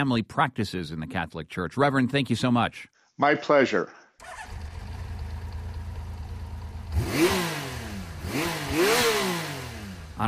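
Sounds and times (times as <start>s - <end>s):
speech: 0.0s - 4.6s
motorcycle engine revving: 4.2s - 10.2s.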